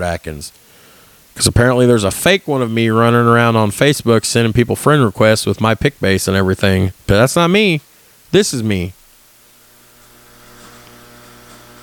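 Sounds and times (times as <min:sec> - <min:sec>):
speech: 0:00.0 - 0:00.8, 0:01.4 - 0:09.0
refrigerator humming loudly: 0:09.3 - 0:11.8.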